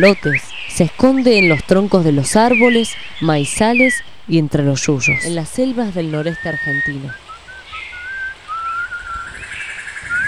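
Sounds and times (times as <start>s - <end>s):
faint rustling: 0.0s - 6.0s
speech: 0.0s - 7.2s
whistling: 0.0s - 10.2s.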